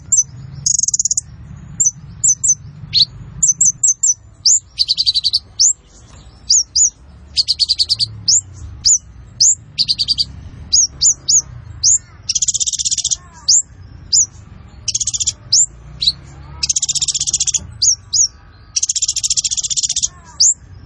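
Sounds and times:
sunbird song with whistled notes and buzzy trills: 0:00.0 - 0:20.8.

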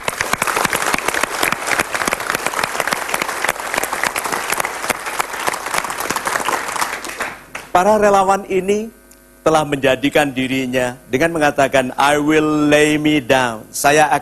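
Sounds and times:
audience applauding volunteers at a gathering: 0:00.0 - 0:07.8
speech: 0:07.8 - 0:14.2.

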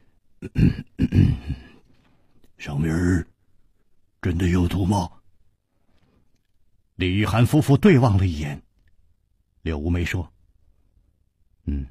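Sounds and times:
speech: 0:00.4 - 0:01.6, 0:02.6 - 0:03.3, 0:04.2 - 0:05.2, 0:07.0 - 0:08.6, 0:09.6 - 0:10.3, 0:11.7 - 0:11.8
storyteller imitating a light cough: 0:00.4 - 0:01.8.

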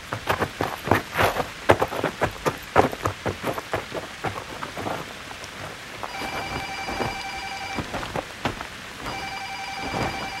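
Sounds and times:
rain starting to fall: 0:00.0 - 0:10.3
telephone ringing: 0:06.1 - 0:08.1, 0:09.0 - 0:10.3.

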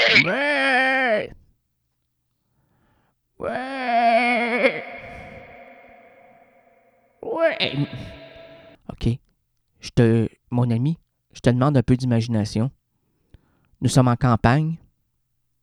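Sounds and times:
human voice imitating a ewe bleating while chewing grass: 0:00.0 - 0:01.3, 0:03.4 - 0:06.6, 0:07.2 - 0:08.7
speech: 0:00.1 - 0:01.4, 0:03.4 - 0:04.8, 0:07.3 - 0:08.1, 0:09.0 - 0:09.2, 0:09.9 - 0:12.8, 0:13.8 - 0:14.8.

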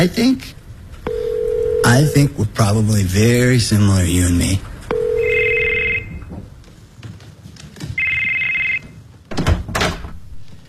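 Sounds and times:
speech: 0:00.0 - 0:00.6, 0:01.8 - 0:04.7
telephone ringing: 0:01.0 - 0:02.3, 0:04.9 - 0:06.3, 0:08.0 - 0:09.0.

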